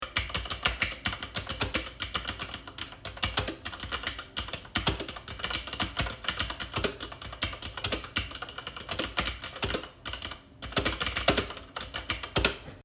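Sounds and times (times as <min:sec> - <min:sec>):
editor keyboard typing: 0:00.0 - 0:12.8.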